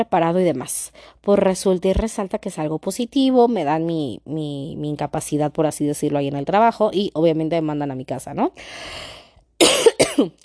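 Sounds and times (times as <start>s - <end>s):
speech: 0.0s - 10.4s
harsh coughs: 9.6s - 10.4s.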